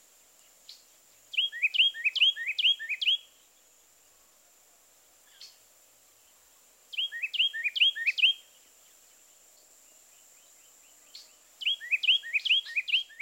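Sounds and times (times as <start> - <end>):
Carolina Wren singing tee-kittle phrases: 0.7 - 3.3, 6.9 - 8.5, 10.4 - 13.1.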